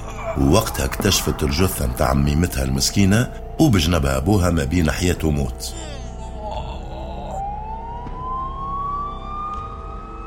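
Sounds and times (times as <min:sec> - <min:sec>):
speech: 0:00.4 - 0:05.9
police and ambulance siren wailing at a crime scene: 0:06.4 - 0:10.2.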